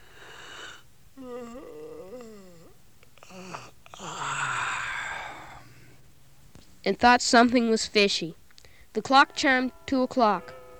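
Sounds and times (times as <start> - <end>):
sleepy man yawning: 0.7 - 5.9
speech: 6.9 - 8.4, 9.0 - 10.5.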